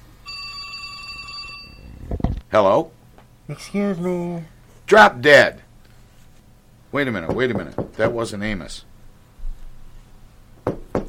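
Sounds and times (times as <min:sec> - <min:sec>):
old-fashioned telephone bell ringing in a metallic trill: 0:00.2 - 0:02.0
speech: 0:02.5 - 0:05.6, 0:06.9 - 0:08.9.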